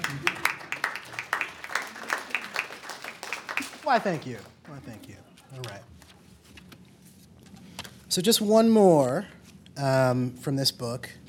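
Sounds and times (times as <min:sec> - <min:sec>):
small crowd clapping: 0:00.0 - 0:05.2
speech: 0:03.9 - 0:06.0, 0:08.2 - 0:11.2.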